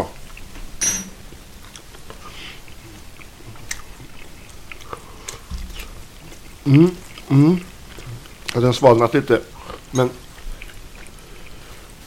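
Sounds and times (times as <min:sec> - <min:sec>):
chewing minced beef fried in rapeseed oil with spice blend and salt: 0:00.0 - 0:12.0
speech: 0:06.7 - 0:07.7, 0:08.5 - 0:10.2.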